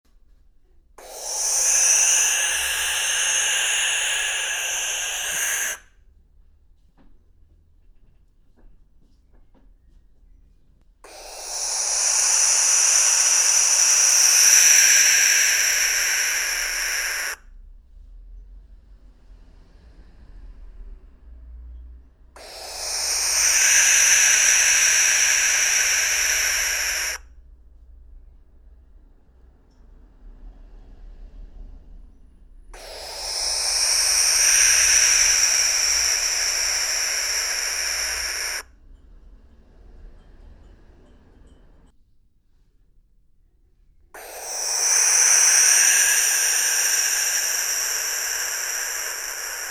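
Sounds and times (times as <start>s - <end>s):
barn owl call: 1.0s - 5.8s, 11.0s - 17.4s, 22.4s - 27.3s, 32.8s - 38.7s, 44.2s - 49.6s.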